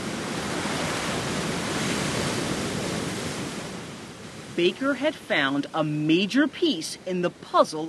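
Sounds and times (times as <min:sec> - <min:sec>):
roaring waterfall on the Nile: 0:00.0 - 0:07.8
speech: 0:04.6 - 0:07.8.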